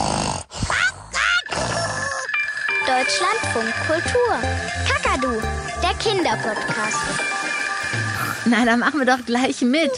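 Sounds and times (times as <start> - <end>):
person imitating snoring with snorts and grunting breaths: 0.0 - 2.3
speech: 2.9 - 9.9.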